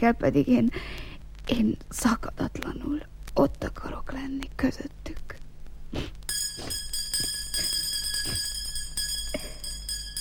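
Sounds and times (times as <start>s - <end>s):
speech: 0.0s - 7.3s
bell ringing to call for a meal: 6.3s - 10.1s.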